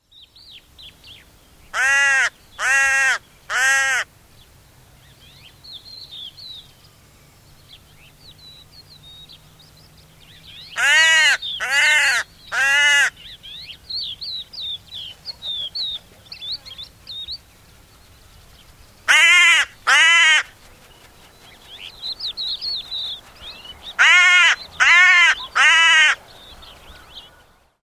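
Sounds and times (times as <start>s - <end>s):
hooded crow calling from damp scrub in Endla, Estonia: 1.7s - 4.1s, 10.7s - 13.3s, 19.1s - 20.6s, 23.9s - 26.3s.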